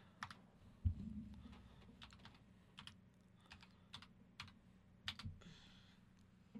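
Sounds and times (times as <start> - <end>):
typing on a computer keyboard: 0.2 - 0.4, 1.5 - 5.3.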